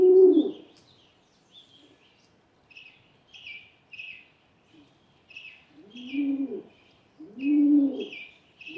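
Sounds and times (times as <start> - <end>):
Rock Pigeon giving low muffled coos: 0.0 - 0.6, 5.8 - 8.7
birds chirping: 0.4 - 8.7.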